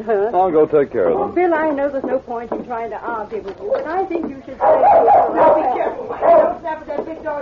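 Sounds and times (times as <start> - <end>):
speech: 0.0 - 7.3
big dog barking in play: 4.6 - 6.6.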